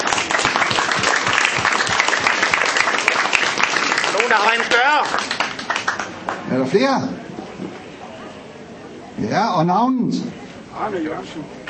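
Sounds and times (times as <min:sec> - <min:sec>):
crowd applauding: 0:00.0 - 0:06.7
speech: 0:04.4 - 0:05.3, 0:06.5 - 0:07.2, 0:09.2 - 0:11.6.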